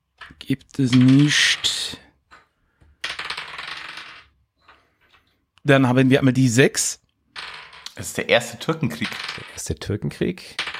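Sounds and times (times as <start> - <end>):
dice rattling and tumbling during a board game: 0.2 - 5.2, 7.3 - 8.0, 8.9 - 9.7, 10.6 - 10.7
speech: 0.5 - 1.6, 5.7 - 7.0, 8.0 - 10.7.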